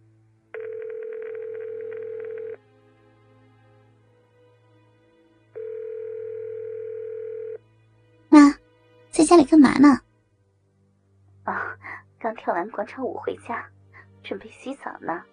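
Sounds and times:
mobile phone ringback tone: 0.6s - 2.6s, 5.6s - 7.6s
speech: 9.2s - 10.1s, 12.4s - 15.3s.

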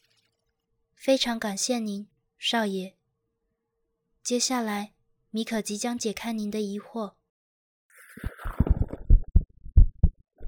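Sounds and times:
speech: 1.0s - 3.0s, 4.2s - 7.2s, 8.2s - 8.4s
soft internal gurgles in the chest: 8.0s - 9.4s
heartbeat heard through the chest: 8.4s - 10.4s.

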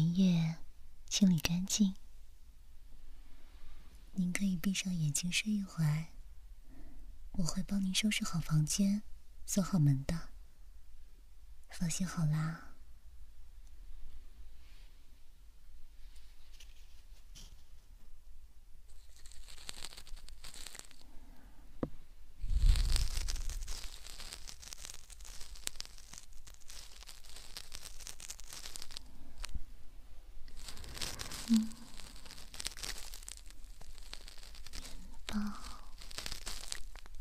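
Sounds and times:
speech: 1.1s - 2.0s, 4.2s - 6.1s, 7.4s - 10.3s, 11.7s - 12.7s
crinkly rustling against a microphone: 15.9s - 18.1s, 18.9s - 21.2s, 22.4s - 37.1s
ear canal scraping on microphone: 16.0s - 17.9s, 18.9s - 21.2s, 22.4s - 29.7s, 30.4s - 37.1s.

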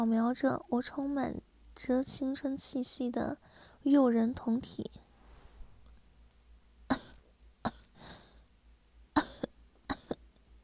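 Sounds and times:
speech: 0.0s - 5.0s
person coughing deliberately: 6.9s - 8.0s, 9.2s - 10.3s.

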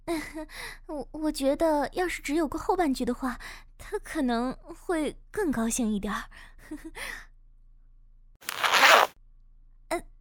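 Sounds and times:
speech: 0.1s - 7.3s, 9.9s - 10.1s
zipper on clothing being pulled open: 8.4s - 9.1s.

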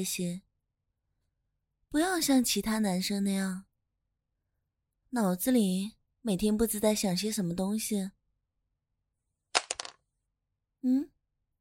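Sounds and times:
speech: 0.0s - 0.5s, 1.9s - 3.7s, 5.1s - 8.2s, 10.8s - 11.1s
pen dropping and clattering on a hard floor: 9.6s - 10.0s.

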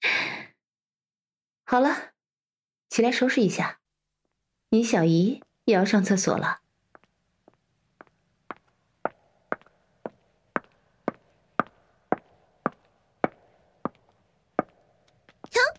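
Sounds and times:
speech: 1.7s - 2.1s, 2.9s - 3.8s, 4.7s - 6.6s
footsteps on a hard floor: 6.9s - 15.7s.

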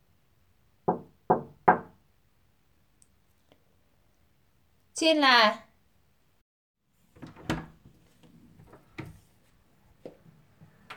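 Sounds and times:
firm knocks on a wooden door: 0.9s - 2.0s
speech: 5.0s - 5.7s.

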